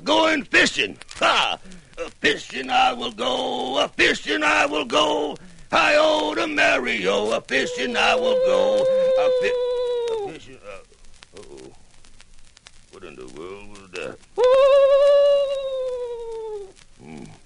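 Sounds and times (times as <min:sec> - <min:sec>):
speech: 0:00.4 - 0:09.7, 0:13.0 - 0:15.2
murmured vocal sounds: 0:01.2 - 0:11.8, 0:13.0 - 0:17.4
human voice imitating an owl hooting: 0:07.5 - 0:10.5, 0:14.4 - 0:17.4.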